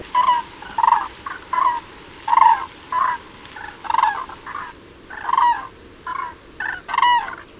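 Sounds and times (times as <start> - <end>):
Grus grus common crane rattling flight calls when landing: 0.0 - 7.5
wind noise: 0.0 - 7.5.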